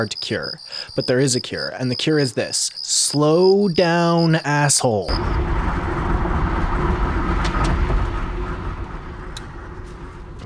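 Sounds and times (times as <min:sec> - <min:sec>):
speech: 0:00.0 - 0:06.1
car interior rumble with road and engine noise while driving: 0:05.1 - 0:10.4.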